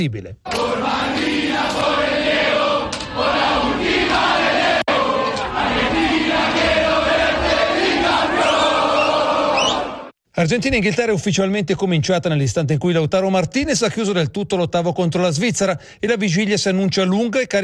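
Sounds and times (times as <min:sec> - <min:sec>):
speech: 0:00.0 - 0:02.4, 0:10.4 - 0:17.6
large crowd of Argentine football fans chanting: 0:00.5 - 0:10.2.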